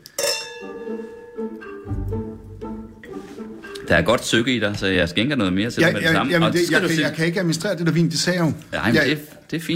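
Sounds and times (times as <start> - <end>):
glasses clinking in a toast: 0.1 - 1.9
speech: 3.9 - 9.7.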